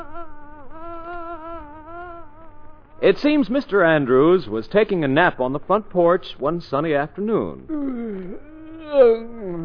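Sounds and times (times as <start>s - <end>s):
housefly buzzing: 0.0s - 3.0s
speech: 3.0s - 9.6s.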